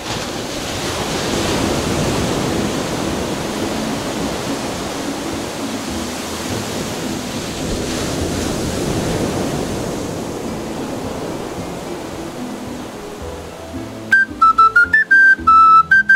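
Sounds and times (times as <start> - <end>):
ocean surf rushing onto the shore: 0.0 - 16.1.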